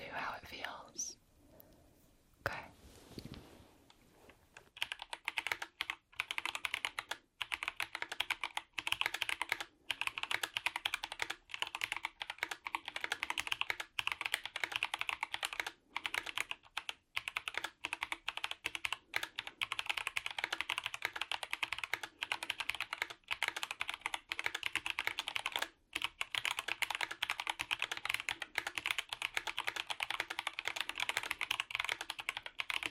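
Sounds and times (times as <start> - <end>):
faint rustling: 1.5 - 4.7
slow typing on a computer keyboard being tested: 4.6 - 32.8.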